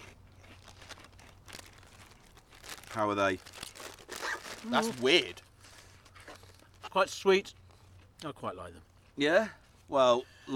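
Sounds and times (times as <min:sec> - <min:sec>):
potato chips with skin left on crunched while eating: 0:00.0 - 0:07.8
speech: 0:03.0 - 0:03.6, 0:04.6 - 0:05.4, 0:06.9 - 0:07.6, 0:08.2 - 0:10.5.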